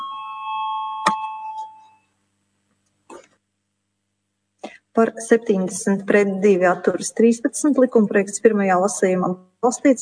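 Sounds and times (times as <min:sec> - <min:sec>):
bell rung in the Latvian parliament to call a vote: 0:00.0 - 0:02.0
speech: 0:05.0 - 0:10.0.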